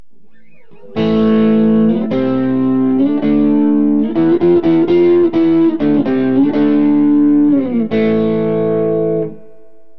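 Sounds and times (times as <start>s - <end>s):
electric guitar through demon neck pickup: 0.2s - 9.9s.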